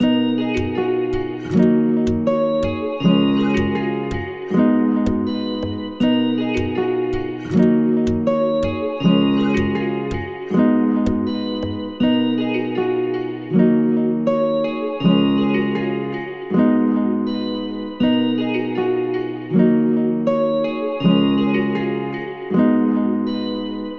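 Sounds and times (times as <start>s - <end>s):
guitar in D sharp minor: 0.0s - 23.9s.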